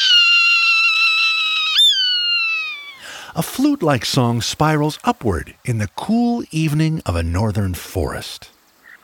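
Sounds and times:
Swainson's hawk raspy scream on the western high plains: 0:00.0 - 0:03.4
speech: 0:03.4 - 0:08.6.

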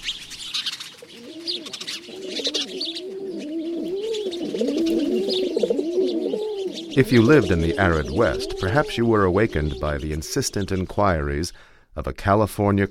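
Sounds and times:
pigeons cooing in throaty rolling calls: 0:00.0 - 0:11.8
sparrows chattering: 0:00.0 - 0:12.9
speech: 0:07.0 - 0:12.9.

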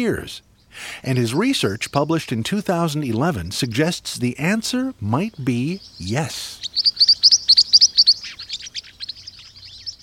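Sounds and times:
speech: 0:00.0 - 0:07.6
green-rumped parrotlet softer scratchy chatter: 0:00.0 - 0:10.0
green-rumped parrotlet bright high chirps in paired notes: 0:05.7 - 0:10.0.

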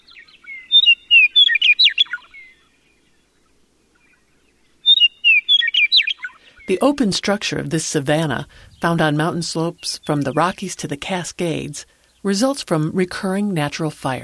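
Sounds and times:
western meadowlark singing in open grassland: 0:00.0 - 0:03.2, 0:04.0 - 0:06.8
speech: 0:06.7 - 0:14.2.

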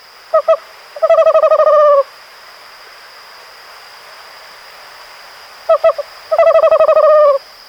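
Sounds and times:
owl hooting: 0:00.3 - 0:02.1, 0:05.7 - 0:07.5.

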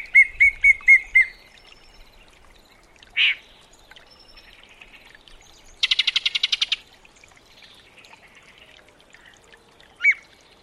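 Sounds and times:
yellow-breasted chat singing: 0:00.0 - 0:06.8.

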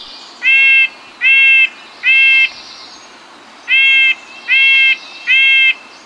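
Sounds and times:
faint background hiss: 0:00.0 - 0:06.0
Red-breasted Nuthatch calls: 0:00.4 - 0:02.6, 0:03.7 - 0:05.8.

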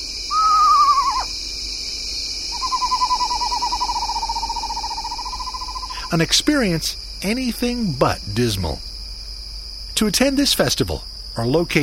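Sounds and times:
constant high hiss of night insects: 0:00.0 - 0:11.8
eastern screech owl calling at night: 0:00.3 - 0:01.3, 0:02.5 - 0:06.0
speech: 0:06.1 - 0:08.9, 0:10.0 - 0:11.8.

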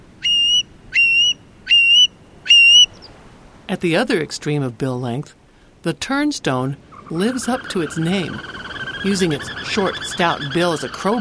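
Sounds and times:
Long-billed Curlew whistled calls: 0:00.2 - 0:03.1, 0:06.9 - 0:11.1
speech: 0:03.7 - 0:11.1.

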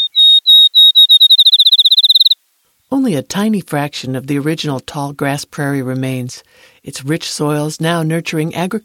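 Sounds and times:
field sparrow singing: 0:00.0 - 0:02.4
speech: 0:02.9 - 0:08.8.

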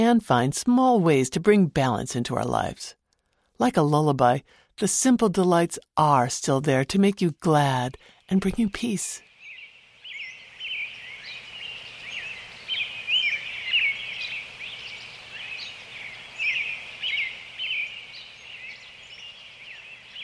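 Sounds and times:
speech: 0:00.0 - 0:03.0, 0:03.6 - 0:09.3
busy chorus of birds chirping and calling: 0:08.5 - 0:20.2.

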